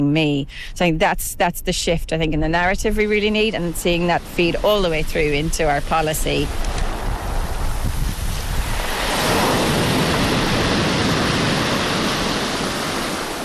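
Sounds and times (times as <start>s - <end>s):
speech: 0.0s - 6.9s
ocean waves rolling in: 3.0s - 13.4s
surf washing: 3.0s - 13.4s.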